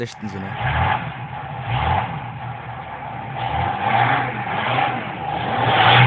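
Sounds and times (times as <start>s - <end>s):
speech: 0.0s - 2.2s
sports car engine revving: 0.5s - 6.0s.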